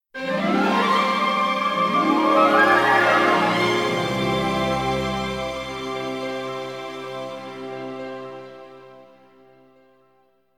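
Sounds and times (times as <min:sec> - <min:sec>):
game music jingle fanfare: 0:00.4 - 0:06.4.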